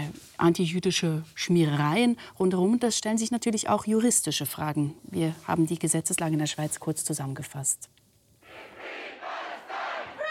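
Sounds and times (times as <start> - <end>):
speech: 0.4 - 8.0
large crowd at a pro-Palestinian demonstration in Bern chanting slogans: 8.4 - 10.3.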